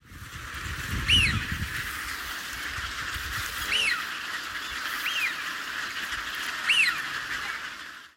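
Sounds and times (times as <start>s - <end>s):
steady broad hiss of background noise: 0.0s - 8.1s
Eurasian wigeon whistled calls: 1.0s - 1.5s, 3.7s - 5.5s, 6.6s - 7.6s.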